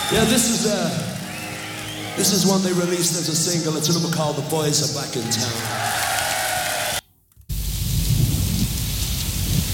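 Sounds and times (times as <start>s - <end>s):
speech: 0.1s - 1.1s, 2.2s - 6.2s
steady rain hissing: 6.7s - 9.7s
deep rolling rumble of thunder: 7.5s - 9.7s.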